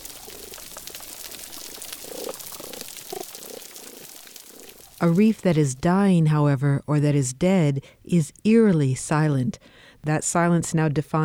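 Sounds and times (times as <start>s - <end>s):
snapping shrimp crackling underwater on a coral reef: 0.0s - 5.4s
speech: 5.0s - 11.2s.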